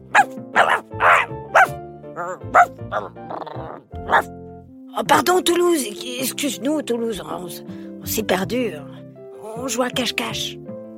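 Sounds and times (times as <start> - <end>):
dog barking in its doghouse: 0.1 - 3.1, 4.1 - 4.3
speech: 2.4 - 3.6, 5.0 - 9.0, 9.6 - 10.6.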